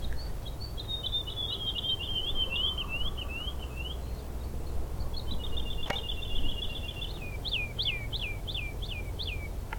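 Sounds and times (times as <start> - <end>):
woodlark singing on a lower path: 0.0 - 9.6.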